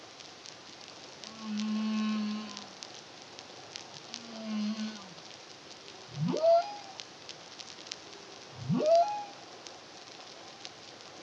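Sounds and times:
faint crackling background: 0.0 - 11.2
humpback whale song moans and whoops in the Caribbean: 6.2 - 7.0, 8.6 - 9.4.

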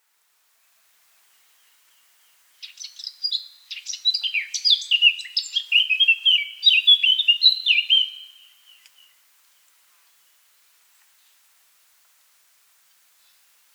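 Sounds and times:
Eurasian blackcap Sylvia atricapilla singing a hurried warble with fluting whistles: 1.4 - 9.2.

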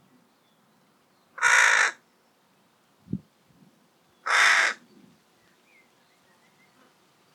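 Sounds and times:
carrion crow Corvus corone cawing: 1.4 - 2.0, 4.2 - 4.8.

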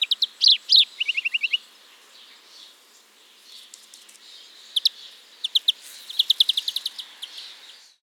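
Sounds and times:
European greenfinch Chloris chloris twittering and trilling: 0.0 - 1.6, 4.5 - 7.9
faint background hiss: 0.0 - 8.0.

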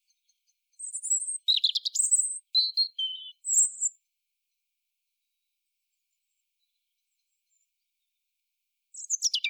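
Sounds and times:
European robin (Erithacus rubecula) song: 0.0 - 4.0, 8.9 - 9.4.

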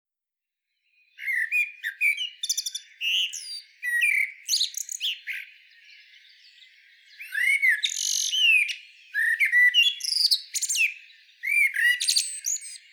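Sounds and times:
common blackbird Turdus merula song of slurred whistles and scratchy twitters: 0.6 - 12.9.

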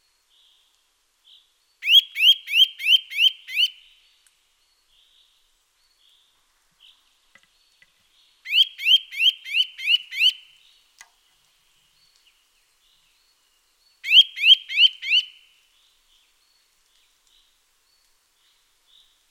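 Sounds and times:
Eurasian nuthatch Sitta europaea calling rising whistled notes: 1.8 - 3.8, 8.5 - 10.4, 14.0 - 15.4.

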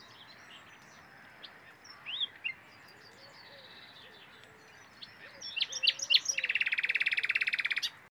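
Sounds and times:
Common nightingale Luscinia megarhynchos song: 0.0 - 8.1.

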